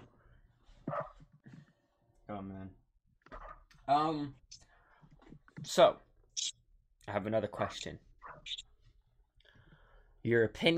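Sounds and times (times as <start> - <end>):
dog barking: 0.8 - 1.2
speech: 2.3 - 2.8, 3.9 - 4.6, 5.6 - 8.7, 10.2 - 10.7.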